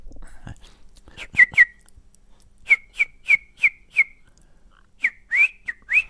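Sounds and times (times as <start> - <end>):
person whistling birdlike song imitating a greenfinch: 1.2 - 1.8, 2.7 - 4.2, 5.0 - 6.0.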